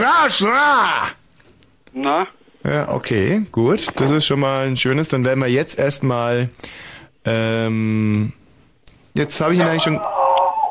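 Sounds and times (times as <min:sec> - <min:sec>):
speech: 0:00.0 - 0:01.2, 0:02.0 - 0:08.4, 0:09.2 - 0:10.2
dog whining: 0:09.8 - 0:10.6.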